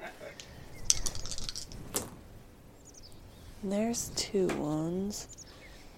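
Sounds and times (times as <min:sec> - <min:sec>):
dice rolled and rattling against a hard surface: 0:00.9 - 0:01.8
speech: 0:03.6 - 0:05.4.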